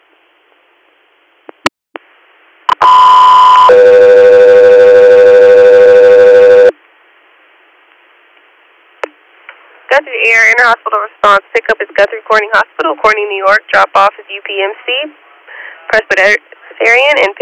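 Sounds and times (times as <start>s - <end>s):
two-tone radio dispatch alert paging an air medical crew: 2.7s - 6.7s
speech: 10.0s - 15.2s, 15.9s - 17.3s.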